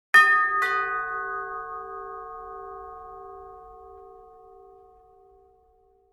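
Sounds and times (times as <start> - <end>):
doorbell ringing: 0.2 - 3.9.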